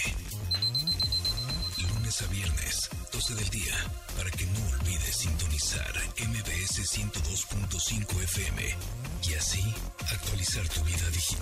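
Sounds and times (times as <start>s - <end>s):
smart device alarm ringing with piercing high tone: 0.5s - 2.0s
warbling electronic melody: 0.5s - 2.2s
speech: 2.2s - 11.3s.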